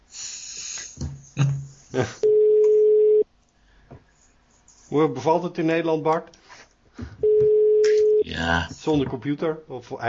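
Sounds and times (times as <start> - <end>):
speech: 2.0 - 2.3, 4.9 - 6.4, 8.4 - 10.0
Skype call dialing tone: 2.2 - 3.2, 7.2 - 8.2.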